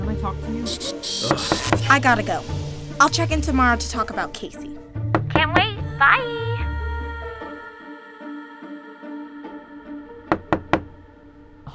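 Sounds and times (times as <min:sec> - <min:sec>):
soft tonal music: 0:00.0 - 0:11.7
speech: 0:00.2 - 0:04.7, 0:05.4 - 0:06.4
knocking on a door: 0:05.1 - 0:05.8, 0:10.3 - 0:11.0.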